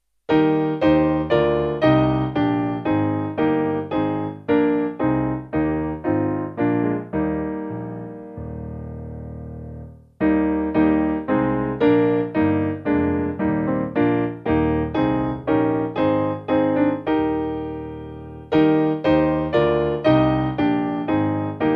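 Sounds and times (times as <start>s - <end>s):
piano piece: 0.3s - 21.7s.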